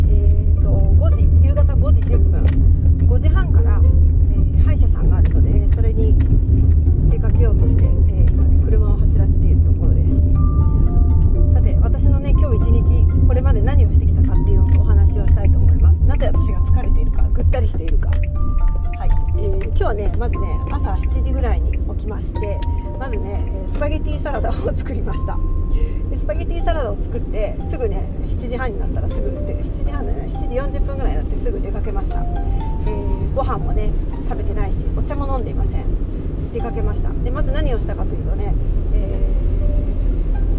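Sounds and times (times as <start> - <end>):
loud low rumble of a car interior: 0.0 - 40.5
faint tonal beeps: 9.6 - 35.0, 39.2 - 40.5
speech: 28.6 - 31.0, 33.5 - 39.5.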